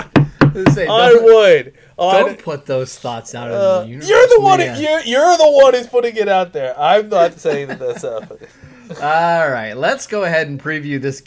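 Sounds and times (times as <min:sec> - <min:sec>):
knocking on a wooden surface above a microphone: 0:00.0 - 0:01.0
speech: 0:00.6 - 0:11.2
laughter: 0:07.0 - 0:09.3.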